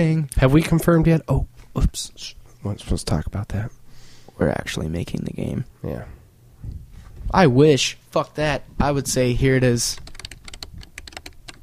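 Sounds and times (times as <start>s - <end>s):
speech: 0.0s - 3.8s, 4.4s - 10.1s
rapid typing on a computer keyboard: 9.9s - 11.6s.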